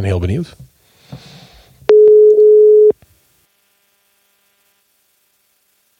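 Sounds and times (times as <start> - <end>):
speech: 0.0 - 0.6
electronic ringback tone of an outgoing phone call: 1.9 - 2.9.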